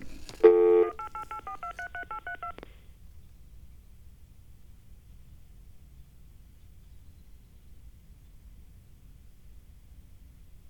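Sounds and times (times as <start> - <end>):
steady telephone dial tone: 0.0 - 2.6.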